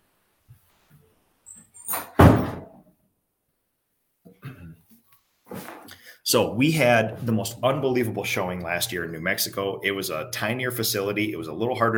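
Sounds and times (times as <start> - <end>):
door creak: 1.5 - 2.7
office door swinging and shutting with a firm thud: 1.9 - 2.8
speech: 6.3 - 11.9.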